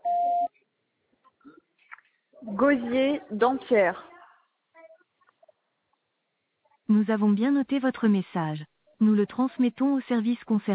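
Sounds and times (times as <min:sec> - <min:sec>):
answering machine beep before recording a message: 0:00.0 - 0:00.5
faint scattered noises: 0:00.0 - 0:07.0
speech: 0:02.5 - 0:04.1, 0:07.0 - 0:10.7.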